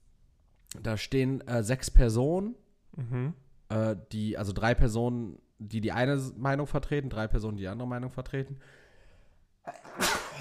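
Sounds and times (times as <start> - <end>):
speech: 0.8 - 8.8, 9.6 - 10.0
person sneezing: 9.7 - 10.3.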